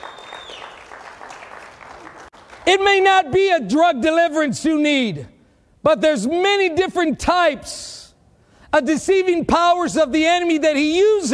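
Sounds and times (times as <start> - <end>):
congregation clapping during a church service: 0.0 - 3.1
speech: 2.6 - 8.0, 8.7 - 11.3.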